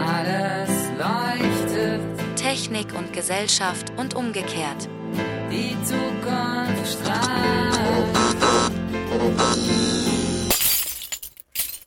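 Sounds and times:
sustained musical passage: 0.0 - 10.5
speech: 2.5 - 8.2
glass shattering: 10.5 - 11.8
scattered tinkling glass fragments: 10.5 - 11.8.

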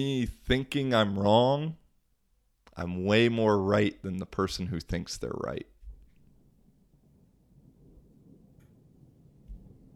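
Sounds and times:
speech: 0.0 - 1.8, 2.8 - 5.7
distant thunder rumble: 5.7 - 9.9.

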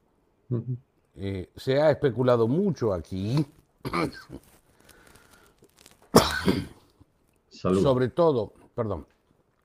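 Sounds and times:
speech: 0.5 - 4.5, 6.4 - 6.8, 7.6 - 9.1
person coughing with a very dry throat: 3.8 - 4.5, 6.1 - 6.9
throat clearing: 3.8 - 4.5, 6.1 - 6.9.

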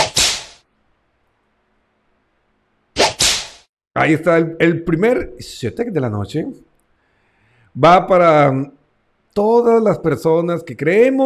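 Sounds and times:
whip crack sound effect with a sharp swish: 0.0 - 0.6, 3.0 - 3.7
speech: 4.0 - 6.7, 7.8 - 8.8, 9.4 - 11.2.

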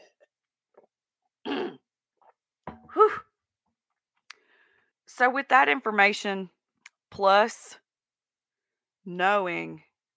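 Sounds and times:
person clearing throat: 1.4 - 1.8
speech: 5.2 - 6.6, 7.2 - 7.8, 9.0 - 10.1.

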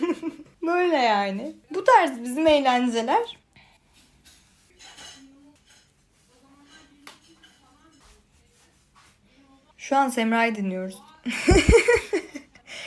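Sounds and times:
speech: 0.7 - 3.4, 9.9 - 12.8
dishes and pots clattering and clinking: 4.2 - 8.2
laughter: 11.3 - 12.6.

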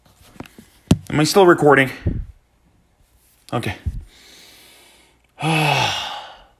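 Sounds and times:
speech: 1.1 - 2.2, 3.5 - 3.9, 5.4 - 5.8
person exhaling deeply in a voiced sigh: 4.0 - 6.5.

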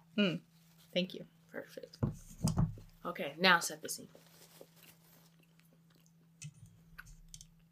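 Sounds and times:
speech: 0.2 - 4.3
wet chewing of a soft cinnamon roll: 4.8 - 7.7.

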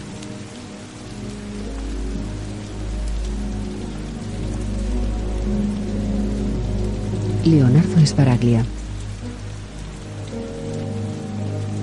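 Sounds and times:
rain falling at night on pavement of a street: 0.0 - 11.8
speech: 7.4 - 8.8.

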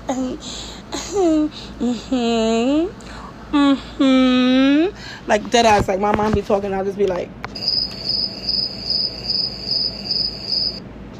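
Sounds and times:
speech: 0.1 - 7.4
crickets chirping: 7.6 - 10.8.

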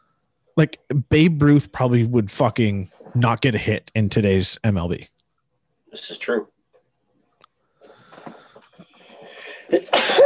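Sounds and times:
speech: 0.6 - 5.2, 5.9 - 6.5, 9.7 - 10.2
quiet breathy catches and sharp intakes: 7.6 - 10.2
person sneezing: 9.6 - 10.2.

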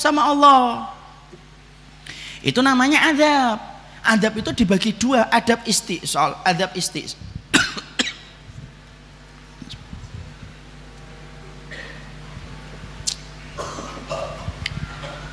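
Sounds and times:
speech: 0.0 - 1.0, 2.4 - 7.8
low steady hum in a room: 0.0 - 15.3
audience member coughing: 7.5 - 8.3, 11.7 - 12.1, 13.6 - 15.2.

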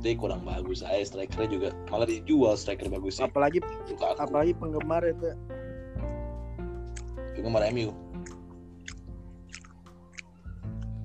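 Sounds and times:
speech: 0.0 - 6.1, 7.4 - 8.0
moist crunchy chewing of food: 6.8 - 11.0.

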